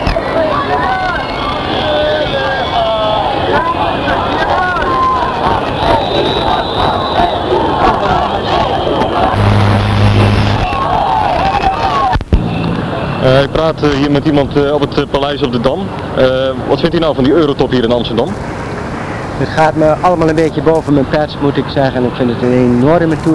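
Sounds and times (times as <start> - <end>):
crowd of demonstrators shouting and chanting at a protest: 0.0 - 13.2
speech: 13.2 - 18.6, 19.4 - 23.3.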